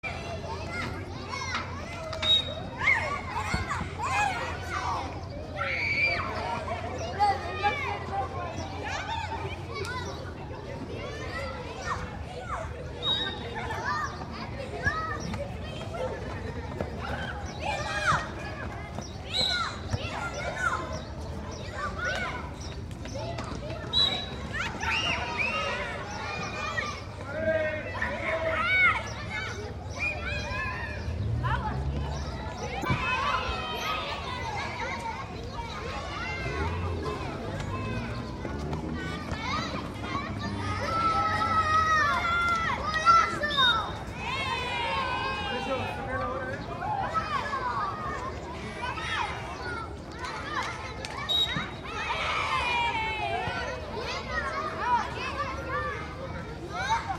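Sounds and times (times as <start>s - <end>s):
crowd ambience: 0.0s - 57.1s.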